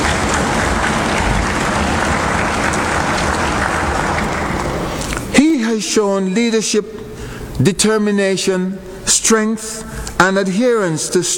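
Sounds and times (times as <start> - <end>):
audience applause: 0.0 - 5.3
speech: 6.0 - 11.3.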